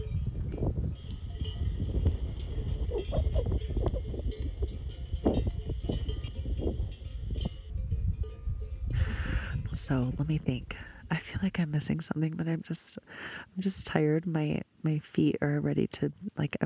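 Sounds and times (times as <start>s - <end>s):
bells on a passing flock of sheep clanking: 0.0s - 9.9s
speech: 9.9s - 16.6s.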